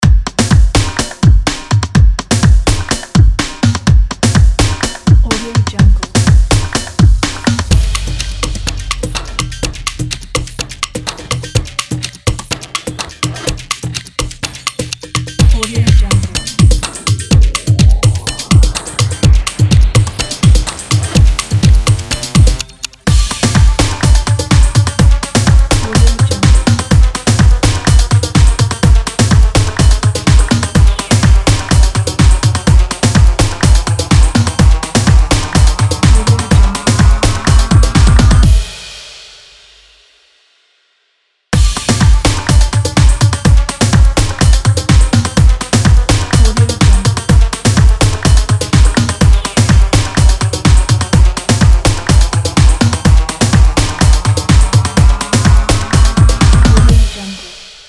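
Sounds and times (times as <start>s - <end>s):
drum: 0.0s - 40.0s, 41.6s - 57.8s.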